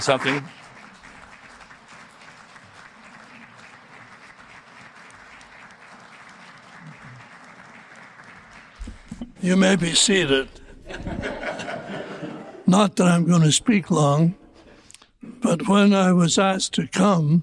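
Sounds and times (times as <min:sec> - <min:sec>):
speech: 0:00.0 - 0:00.6, 0:09.4 - 0:11.2, 0:12.7 - 0:14.4, 0:15.4 - 0:17.4
sustained applause from a sizable audience: 0:00.0 - 0:12.7
laughter: 0:09.2 - 0:16.3.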